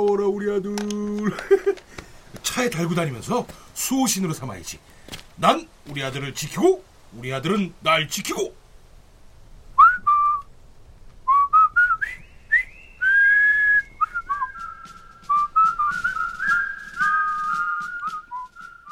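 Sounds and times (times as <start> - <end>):
speech: 0.0 - 8.6
laughter: 1.2 - 1.9
person whistling a bouncy march tune: 9.8 - 10.5, 11.3 - 18.9.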